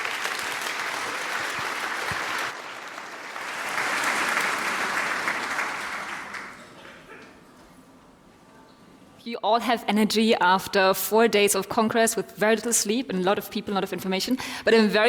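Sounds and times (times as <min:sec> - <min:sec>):
sustained applause from a large audience: 0:00.0 - 0:07.3
speech: 0:09.2 - 0:15.0.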